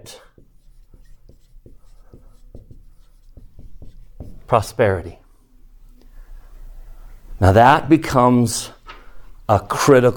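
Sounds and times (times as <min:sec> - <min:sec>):
speech: 0:00.0 - 0:00.2, 0:04.5 - 0:05.2, 0:07.4 - 0:08.8, 0:09.5 - 0:10.1
hiss: 0:00.0 - 0:10.1
marker or chalk scratching while drawing a box on a board: 0:00.1 - 0:04.7.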